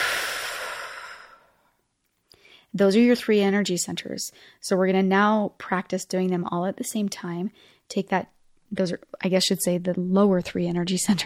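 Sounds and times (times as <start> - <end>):
long breathy exhale through the mouth: 0.0 - 1.7
speech: 2.7 - 11.2.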